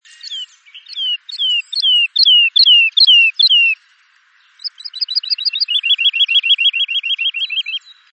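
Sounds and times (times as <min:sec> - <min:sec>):
lark mating song: 0:00.0 - 0:08.1.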